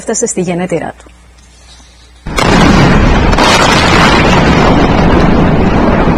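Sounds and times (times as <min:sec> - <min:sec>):
speech: 0:00.0 - 0:01.2
heavy continuous roaring rumble from airstrikes on a city: 0:02.3 - 0:06.1
loud explosion from an airstrike on a city: 0:02.3 - 0:06.1.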